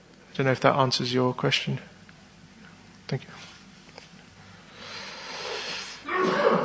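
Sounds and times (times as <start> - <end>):
speech: 0.4 - 1.9, 3.1 - 3.5
breathy inhale: 4.5 - 6.1
person sneezing: 5.5 - 6.6.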